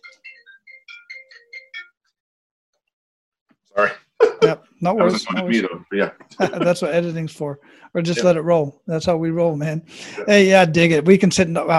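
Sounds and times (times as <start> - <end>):
mobile phone ringtone with bright electronic melody: 0.0 - 2.0
speech: 3.8 - 11.7
laughter: 4.2 - 6.9.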